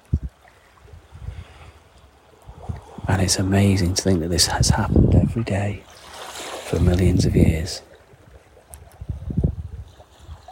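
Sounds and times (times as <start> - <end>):
North Atlantic tidal water ebbing out of a large bay: 0.0 - 10.4
speech: 3.1 - 5.9, 6.7 - 7.9.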